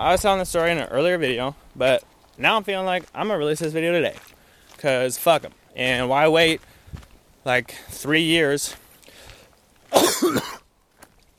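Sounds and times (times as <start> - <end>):
speech: 0.0 - 6.7, 7.4 - 8.8, 9.9 - 10.6
harsh cough: 9.9 - 10.6.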